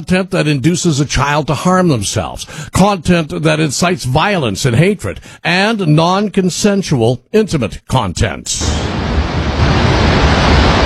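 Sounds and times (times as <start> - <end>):
speech: 0.0 - 9.0
thunderous roar of water shooting through dam spillway: 8.6 - 10.8.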